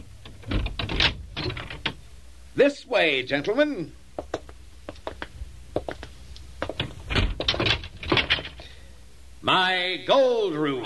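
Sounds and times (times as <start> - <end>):
door lock of a treasure house being unlocked: 0.0 - 2.0, 6.7 - 8.6
speech: 2.6 - 4.0, 9.5 - 10.8.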